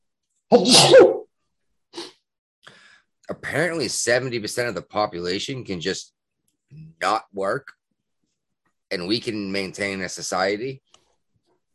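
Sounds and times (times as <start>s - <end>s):
loud sneeze with a throaty tail: 0.5s - 1.2s
speech: 0.5s - 1.2s, 3.5s - 7.8s, 8.9s - 11.0s.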